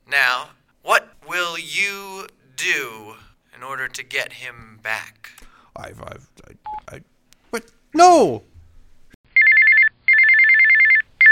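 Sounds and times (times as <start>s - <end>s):
speech: 0.1s - 8.5s
telephone bell ringing: 9.4s - 11.3s.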